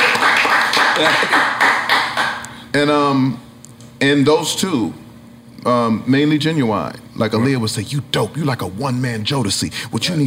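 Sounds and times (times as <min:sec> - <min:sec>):
dense rhythmic audience applause: 0:00.0 - 0:02.4
speech: 0:01.0 - 0:01.5, 0:02.8 - 0:03.4, 0:04.0 - 0:05.0, 0:05.6 - 0:10.2.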